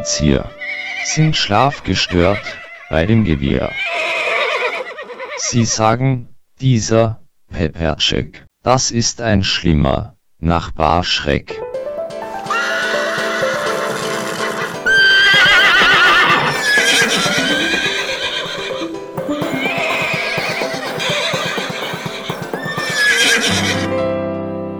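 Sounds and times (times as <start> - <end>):
speech: 0.0 - 4.1, 5.4 - 11.7
small herd of horses neighing loudly: 3.6 - 5.6, 12.4 - 23.7
shuffling hooves of a small herd of horses: 12.4 - 23.6.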